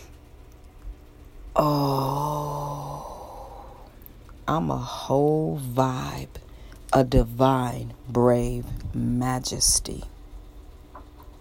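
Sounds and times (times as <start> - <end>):
speech: 1.6 - 2.2, 4.5 - 10.1
person releasing a deep breath as a long voiced sigh: 1.6 - 4.0.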